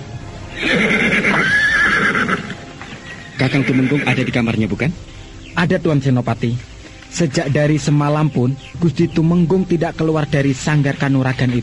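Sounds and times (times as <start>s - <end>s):
horse neighing: 0.5s - 4.4s
hoof clatter: 0.6s - 4.1s
speech: 3.4s - 11.6s.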